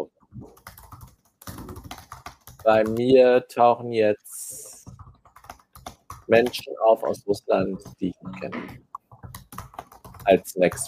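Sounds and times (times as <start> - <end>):
typing on a computer keyboard: 0.5 - 3.2, 4.5 - 6.6, 8.9 - 10.8
speech: 2.6 - 4.4, 6.3 - 8.8, 10.3 - 10.8.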